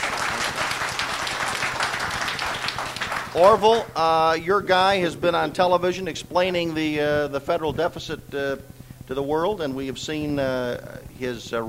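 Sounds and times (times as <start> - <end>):
audience applause: 0.0 - 3.9
speech: 3.4 - 11.6.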